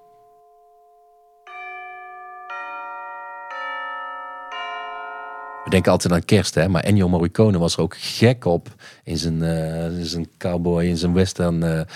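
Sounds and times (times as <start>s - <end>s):
tubular bells struck as a percussion layer: 0.0s - 6.3s
speech: 5.7s - 11.9s.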